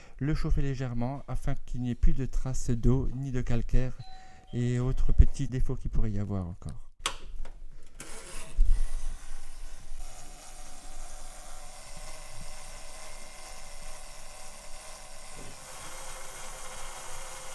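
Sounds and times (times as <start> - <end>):
speech: 0.2 - 6.8
hair dryer blowing air to dry a piece of jewelry: 8.1 - 17.5.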